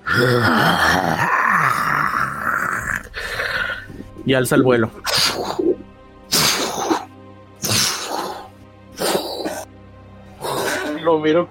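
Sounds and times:
voice imitating a creature's disappointed roar: 0.0s - 3.5s, 5.1s - 9.7s, 10.4s - 11.0s
speech: 0.2s - 1.8s, 4.2s - 5.5s, 11.1s - 11.4s.

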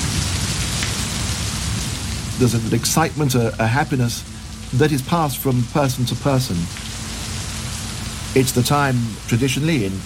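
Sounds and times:
low rumbling thunder: 0.0s - 2.1s
heavy monsoon downpour: 0.0s - 10.0s
speech: 2.4s - 6.9s, 8.4s - 10.0s.

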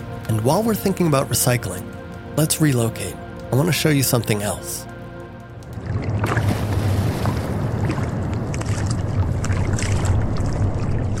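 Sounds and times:
speech: 0.3s - 4.9s
wind and water rushing around a boat at sea: 5.6s - 11.1s.

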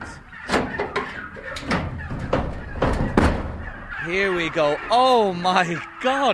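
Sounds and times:
clunks and rattles of a door latch and frame: 0.0s - 3.6s
poultry clucking and cooing faintly: 0.0s - 6.3s
speech: 4.1s - 6.3s.

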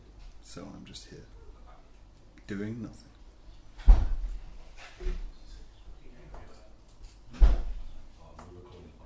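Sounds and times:
speech: 0.5s - 1.4s, 2.5s - 3.1s
house door opening and closing for a parcel delivery: 3.8s - 4.3s, 7.3s - 7.9s.

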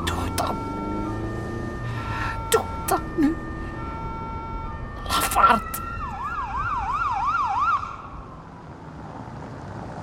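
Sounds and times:
ambulance siren wailing: 0.0s - 8.6s.

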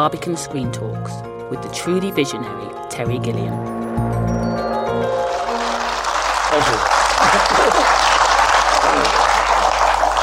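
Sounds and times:
speech: 0.0s - 4.1s
crowd applauding: 5.0s - 10.2s
laughter: 6.5s - 10.0s.

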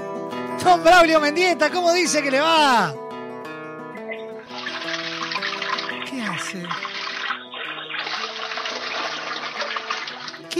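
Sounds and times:
speech: 0.6s - 3.0s, 6.4s - 6.9s
toilet flushing: 4.4s - 10.5s.

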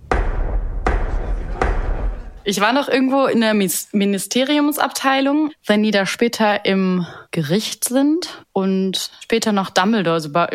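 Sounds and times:
heavy booming knocks on a door: 0.0s - 2.4s
speech: 2.4s - 10.5s.

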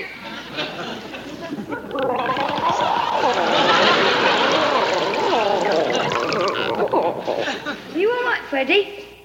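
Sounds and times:
laughter: 0.2s - 8.0s
water being squeezed out, pouring and dribbling: 1.7s - 7.8s
speech: 8.6s - 9.1s.

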